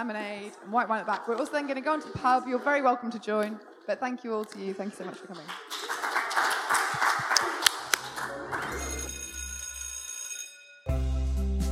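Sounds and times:
speech: 0:00.0 - 0:05.9
audience applauding: 0:05.1 - 0:09.4
sustained ringing tones: 0:08.6 - 0:10.9.

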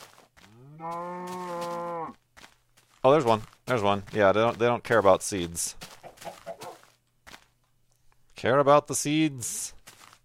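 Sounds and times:
speech: 0:00.8 - 0:01.3, 0:03.0 - 0:05.8, 0:08.4 - 0:09.8
video game chicken clucking: 0:05.8 - 0:07.0.

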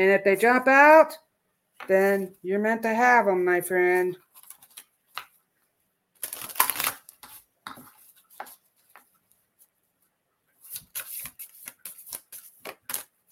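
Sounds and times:
speech: 0:00.0 - 0:01.2, 0:01.8 - 0:04.2
tarot cards being shuffled: 0:04.2 - 0:05.4, 0:06.2 - 0:09.2, 0:10.6 - 0:13.2.

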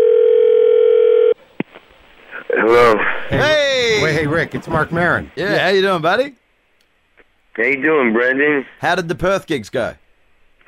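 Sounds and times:
telephone dial tone while placing call: 0:00.0 - 0:01.4
speech: 0:02.9 - 0:06.4, 0:07.6 - 0:10.0.

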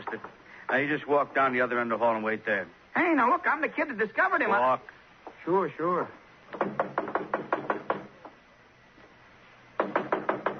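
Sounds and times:
speech: 0:00.1 - 0:06.8
police knocking on a wooden door: 0:06.5 - 0:08.4, 0:09.8 - 0:10.5.

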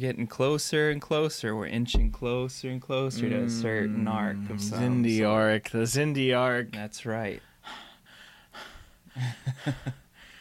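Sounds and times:
speech: 0:00.0 - 0:07.8, 0:08.6 - 0:10.0
heavy excited breathing: 0:07.4 - 0:10.3.

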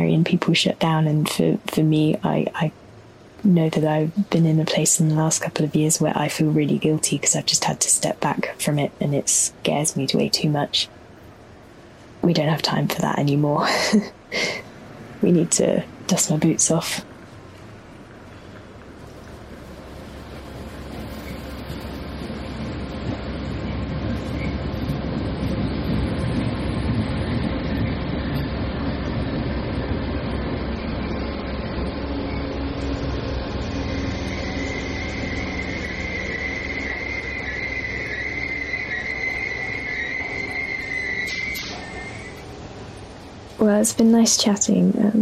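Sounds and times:
trains rumbling through a station: 0:00.0 - 0:45.1
speech: 0:00.1 - 0:02.8, 0:03.4 - 0:11.0, 0:12.2 - 0:14.6, 0:15.2 - 0:17.1, 0:43.8 - 0:45.1
metallic squeal of train wheels or brakes: 0:32.1 - 0:42.4.

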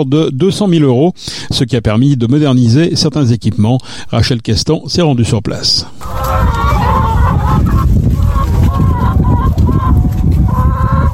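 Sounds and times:
speech: 0:00.0 - 0:06.6
chorus of laying hens clucking and squawking: 0:06.0 - 0:11.1.

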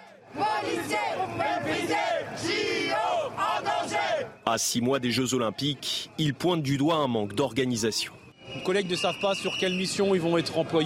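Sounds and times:
police officers chanting and shouting in a street march in Paris: 0:00.0 - 0:07.2
speech: 0:04.5 - 0:10.8.

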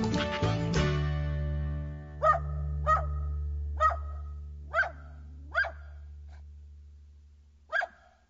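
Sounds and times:
recorded song: 0:00.0 - 0:02.2
dog barking: 0:02.2 - 0:06.4, 0:07.7 - 0:08.2.

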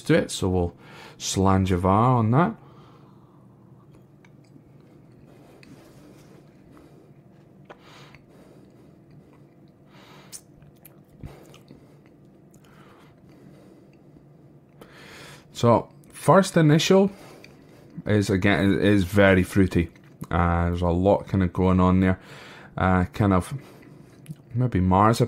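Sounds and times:
speech: 0:00.0 - 0:02.6, 0:15.6 - 0:17.2, 0:18.0 - 0:23.7, 0:24.6 - 0:25.2
low steady room hum: 0:00.0 - 0:25.2
person sipping and tasting neat whisky: 0:04.3 - 0:14.1.

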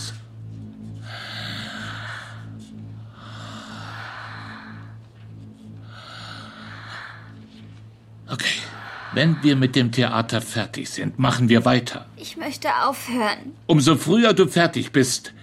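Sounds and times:
deep breathing with a rough snore-like rasp: 0:00.0 - 0:10.2
low pulsing mechanical hum: 0:00.0 - 0:15.4
speech: 0:08.3 - 0:15.4.

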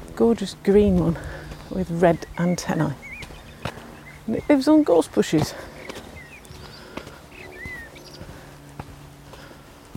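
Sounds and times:
steady outdoor noise on a lowland heath: 0:00.0 - 0:09.9
speech: 0:00.2 - 0:03.0, 0:04.3 - 0:05.7
blackbird singing on a lowland heath: 0:01.4 - 0:08.3.

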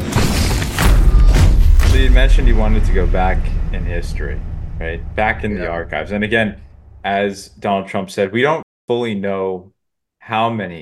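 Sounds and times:
booming explosion sound effect with low rumble: 0:00.0 - 0:07.3
speech: 0:02.0 - 0:10.8.

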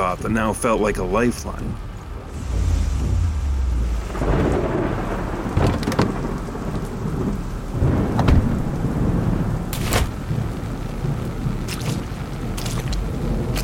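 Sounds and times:
heavy rain: 0:00.0 - 0:13.6
speech: 0:00.1 - 0:01.9
deep rumbles of thunder: 0:02.1 - 0:13.6.

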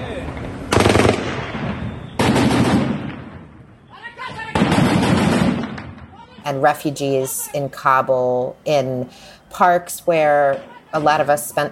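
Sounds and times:
automatic gunfire on city streets in Afghanistan: 0:00.7 - 0:01.5, 0:02.2 - 0:03.3, 0:04.5 - 0:06.0
faint shouting voices: 0:03.8 - 0:04.7, 0:06.0 - 0:08.4, 0:09.6 - 0:11.7
speech: 0:06.5 - 0:11.7.

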